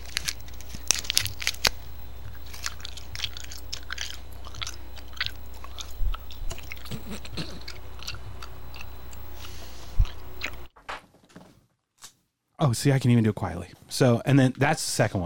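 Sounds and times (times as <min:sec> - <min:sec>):
wet chewing with smacking and squishing bites: 0:00.0 - 0:10.7
steady low hum: 0:00.0 - 0:10.8
speech: 0:12.6 - 0:15.2.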